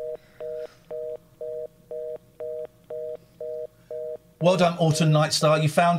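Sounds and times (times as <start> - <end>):
phone keypad tones dialing a telephone number: 0.0 - 4.2
faint hum: 0.0 - 5.9
speech: 4.4 - 5.9.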